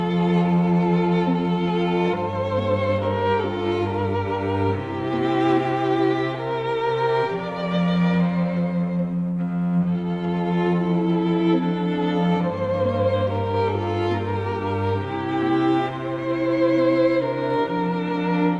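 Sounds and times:
meditative Christmas carol melody with lullaby-like feel: 0.0 - 18.5.

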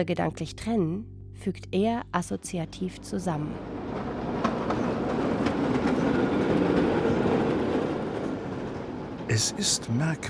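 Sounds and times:
speech: 0.0 - 4.1, 9.3 - 10.2
train wheels rumbling over the rails: 3.3 - 10.2.

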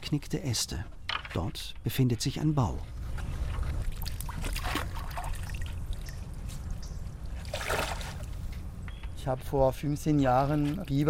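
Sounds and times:
speech: 0.1 - 3.3, 9.2 - 11.0
water sloshing and dripping as a boat is pushed with a pole: 3.4 - 8.6.

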